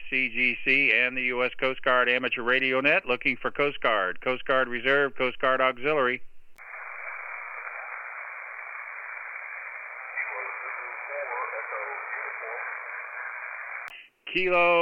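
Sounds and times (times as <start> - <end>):
speech: 0.1 - 6.3, 14.3 - 14.7
steady hiss and static of amateur radio band: 6.6 - 14.2
faint garbled voice on weak amateur radio signal: 7.5 - 14.0.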